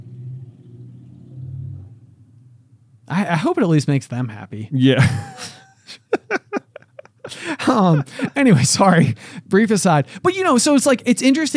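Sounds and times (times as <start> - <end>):
motorcycle rumbling past outside: 0.0 - 3.0
speech: 3.1 - 5.6, 7.8 - 11.5
laughter: 4.8 - 9.1.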